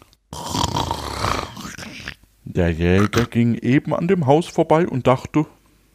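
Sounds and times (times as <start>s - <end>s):
person imitating a loud snore: 0.3s - 2.2s
speech: 2.6s - 5.6s.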